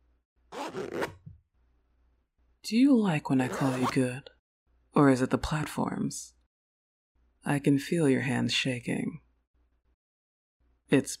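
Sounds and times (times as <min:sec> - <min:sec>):
zipper being zipped up on shoes: 0:00.5 - 0:01.3, 0:03.5 - 0:04.0
speech: 0:00.7 - 0:01.2, 0:02.7 - 0:04.3, 0:05.0 - 0:06.4, 0:07.4 - 0:09.2, 0:10.9 - 0:11.1.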